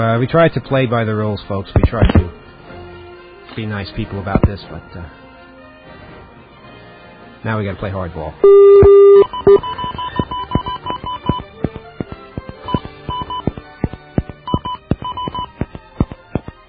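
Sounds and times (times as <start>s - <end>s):
speech: 0.0s - 2.4s, 3.5s - 5.2s, 7.4s - 10.0s
touch-tone beeps from a telephone keypad: 8.4s - 16.5s.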